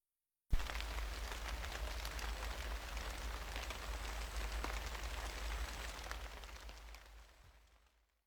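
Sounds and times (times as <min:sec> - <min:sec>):
light rain droplets tapping a surface: 0:00.6 - 0:07.1.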